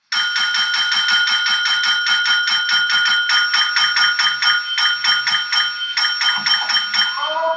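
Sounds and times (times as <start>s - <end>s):
small hand bell rung by an elderly man in a wheelchair: 0.1s - 7.4s.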